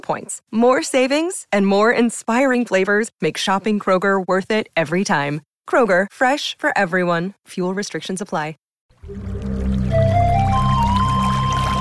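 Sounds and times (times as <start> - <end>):
speech: 0.0 - 9.3
water pouring into a container: 8.9 - 11.7.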